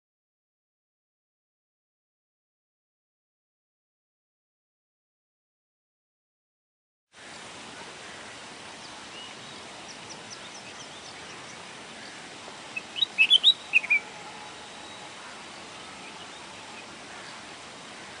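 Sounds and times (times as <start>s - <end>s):
steady hiss: 7.2s - 18.1s
bulbul song: 12.7s - 17.0s.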